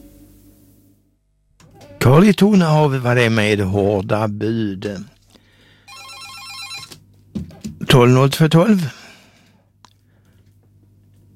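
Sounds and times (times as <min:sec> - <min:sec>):
speech: 0:02.1 - 0:05.1, 0:07.9 - 0:09.0
telephone bell ringing: 0:05.9 - 0:07.0.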